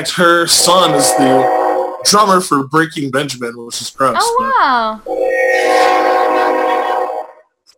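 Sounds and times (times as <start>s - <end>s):
loud train horn blaring: 0.0s - 2.4s, 5.1s - 7.3s
speech: 0.0s - 6.1s.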